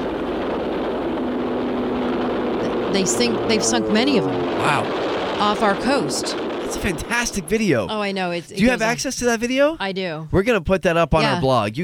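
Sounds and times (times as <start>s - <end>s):
warplane engines roaring in archival film: 0.0s - 9.1s
low hum: 0.0s - 9.3s
speech: 2.9s - 11.8s.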